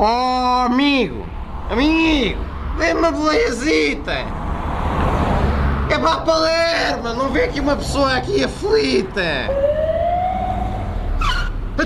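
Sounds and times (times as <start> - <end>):
speech: 0.0 - 4.5, 6.0 - 9.7
traffic rumble: 0.0 - 11.8
ambulance siren wailing: 2.8 - 3.6, 9.2 - 11.6.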